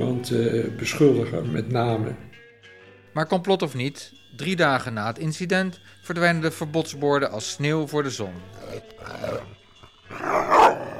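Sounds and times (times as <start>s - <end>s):
speech: 0.2s - 2.4s, 3.2s - 10.9s
small poodle growling and barking: 8.6s - 10.9s.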